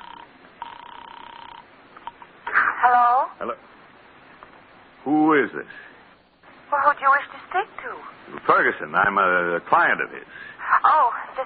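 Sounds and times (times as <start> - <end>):
telephone ringing on an apartment line: 0.0 - 2.2
speech: 2.8 - 3.8, 5.0 - 5.9, 6.7 - 11.4.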